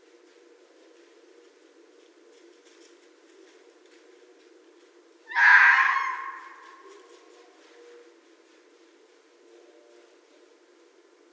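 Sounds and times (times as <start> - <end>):
Red fox giving a harsh rasping scream: 5.3 - 6.9.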